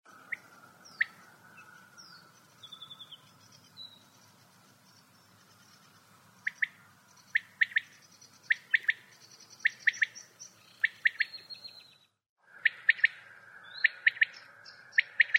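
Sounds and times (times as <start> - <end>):
quail calling: 6.4 - 11.8, 12.5 - 15.3.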